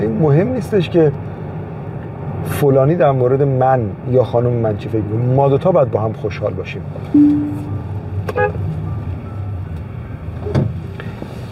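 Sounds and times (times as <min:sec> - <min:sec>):
steady road traffic rumble: 0:00.0 - 0:11.5
speech: 0:00.2 - 0:01.3, 0:02.5 - 0:07.7, 0:08.3 - 0:08.6
brief car horn toot: 0:07.2 - 0:08.6.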